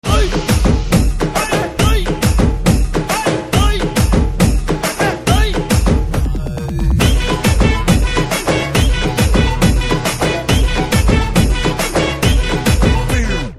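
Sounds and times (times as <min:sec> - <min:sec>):
DJ drum beats ringtone: 0:00.1 - 0:13.4.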